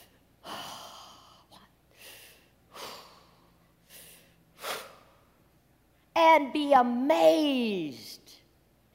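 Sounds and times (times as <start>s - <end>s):
person breathing: 0.0s - 5.4s
speech: 6.4s - 8.1s.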